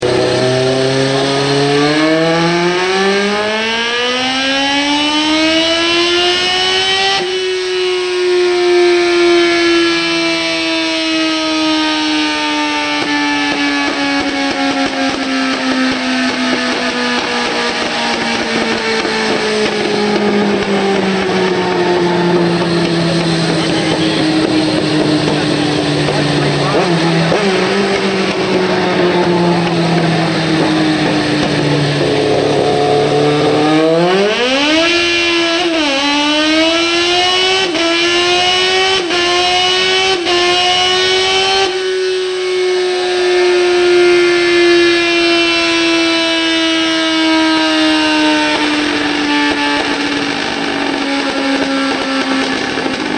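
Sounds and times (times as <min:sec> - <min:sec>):
ZX9 motorcycle with Hindle exhaust pipe: 0:00.0 - 0:53.1.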